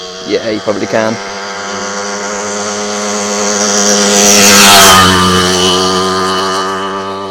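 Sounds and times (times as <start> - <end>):
motorbike engine passing: 0.0 - 7.3
speech: 0.3 - 1.9, 4.2 - 5.8.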